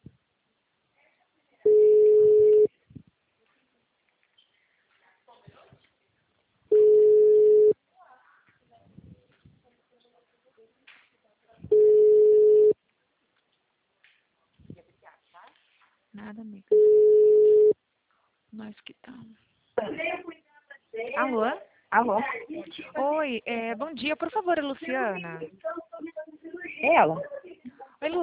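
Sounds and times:
telephone ringback tone: 0:01.7 - 0:02.7, 0:06.7 - 0:07.8, 0:11.7 - 0:12.8, 0:16.7 - 0:17.8
speech: 0:16.3 - 0:16.8, 0:18.7 - 0:20.4, 0:21.0 - 0:25.8, 0:26.8 - 0:27.4, 0:28.0 - 0:28.2.

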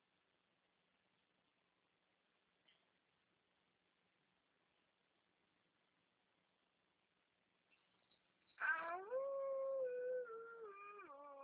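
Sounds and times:
dog howling: 0:08.6 - 0:11.4.

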